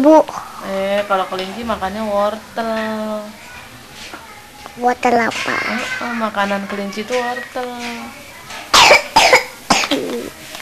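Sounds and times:
speech: 0:00.0 - 0:03.5, 0:04.8 - 0:08.2
sharp raspy coughs: 0:08.8 - 0:10.3.

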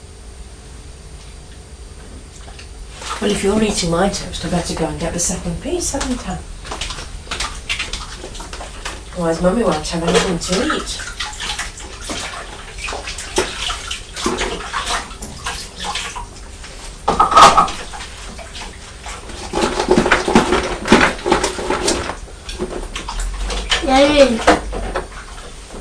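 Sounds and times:
running water splashing as a tray is washed at home: 0:02.4 - 0:25.7
speech: 0:03.2 - 0:06.6, 0:09.2 - 0:11.1.

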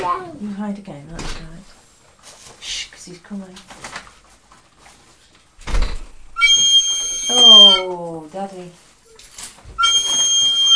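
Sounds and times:
speech: 0:00.0 - 0:01.6, 0:02.6 - 0:03.9, 0:07.3 - 0:08.8
rustling busy background: 0:00.0 - 0:10.7
person whistling a steady high tone: 0:06.4 - 0:07.8, 0:09.8 - 0:10.7.

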